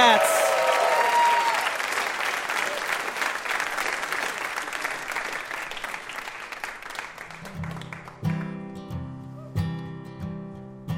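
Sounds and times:
audience applause: 0:00.0 - 0:08.5.

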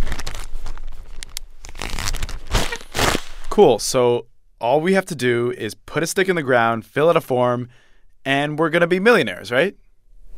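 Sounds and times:
plastic bag crinkling as a notice is sealed inside: 0:00.0 - 0:03.6
speech: 0:03.6 - 0:09.8.

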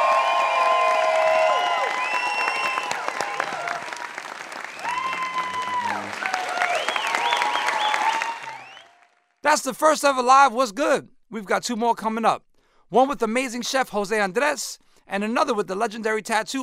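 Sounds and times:
whoops and cheers: 0:00.0 - 0:09.1
live audience applause: 0:00.0 - 0:09.4
shrill whistles: 0:00.1 - 0:03.6, 0:04.6 - 0:09.1
speech: 0:09.5 - 0:16.6.

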